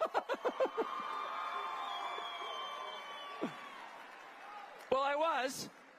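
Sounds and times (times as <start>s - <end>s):
live audience laughing: 0.0s - 1.0s
live audience cheering and whooping: 0.0s - 4.8s
speech: 5.4s - 5.8s.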